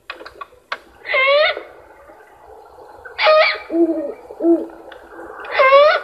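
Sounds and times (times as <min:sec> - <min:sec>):
immature great horned owl screeching: 0:01.0 - 0:01.8, 0:03.2 - 0:04.7, 0:05.5 - 0:06.0
immature great horned owl hoot-like notes: 0:01.0 - 0:02.1, 0:03.1 - 0:06.0.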